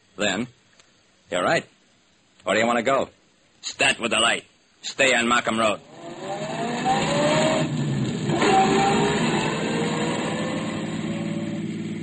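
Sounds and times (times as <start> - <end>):
speech: 0.2 - 0.6, 1.3 - 1.8, 2.4 - 5.9
car engine humming inside the vehicle during a drive: 5.8 - 12.0
road noise: 5.8 - 12.0.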